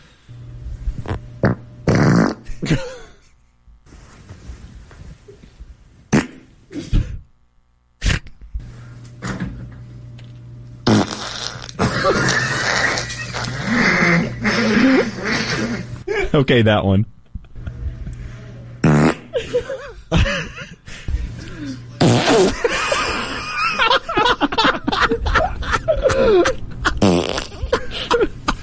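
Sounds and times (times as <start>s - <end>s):
farts from someone with Covid-19: 1.0s - 2.8s, 6.1s - 7.1s, 8.0s - 8.4s, 10.8s - 15.9s, 18.8s - 19.3s, 22.0s - 23.3s, 27.0s - 27.7s
speech: 2.7s - 3.0s, 16.4s - 17.2s
laughter: 11.8s - 16.4s, 17.2s - 18.2s, 19.3s - 28.6s.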